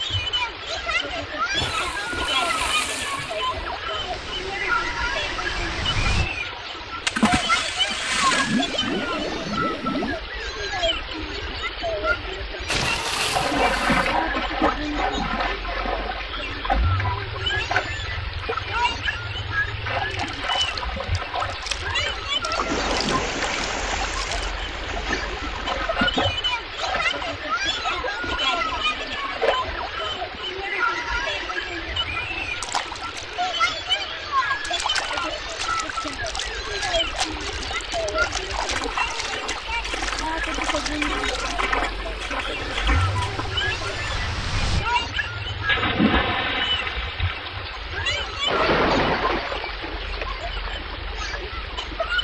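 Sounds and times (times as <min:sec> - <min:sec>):
young otters in water: 0:00.0 - 0:52.2.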